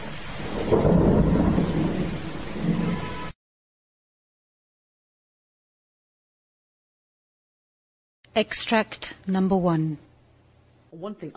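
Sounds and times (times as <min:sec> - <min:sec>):
deep thunder rumbling in a monsoon rainstorm: 0:00.0 - 0:03.4
monsoon rainstorm in Bangladesh pouring down: 0:00.0 - 0:03.4
speech: 0:08.4 - 0:10.1, 0:11.0 - 0:11.3.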